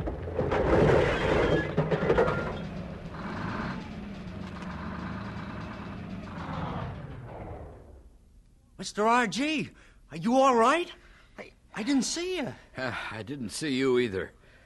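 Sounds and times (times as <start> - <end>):
grinding and crunching of a tractor running over a car: 0.0 - 7.7
tractor diesel engine roaring and idling: 1.7 - 8.2
speech: 8.8 - 14.4.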